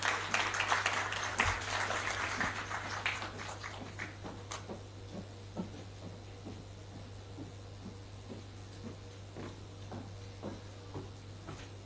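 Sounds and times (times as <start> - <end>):
audience applauding a woman coming forward: 0.0 - 4.7
low constant hum: 0.0 - 11.8.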